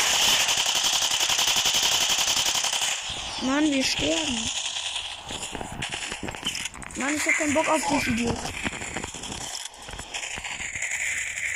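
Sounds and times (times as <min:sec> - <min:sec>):
rapid automatic gunfire in a video game: 0:00.0 - 0:11.5
speech: 0:03.4 - 0:04.6, 0:07.0 - 0:08.7.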